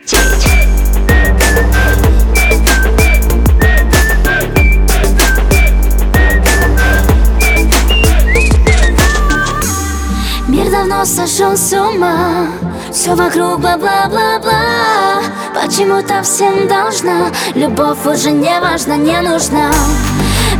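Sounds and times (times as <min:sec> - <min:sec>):
person whistling a bright high melody: 0:00.0 - 0:09.9
loud dense music with steady thumping beats: 0:00.0 - 0:10.1
speech: 0:11.4 - 0:20.5.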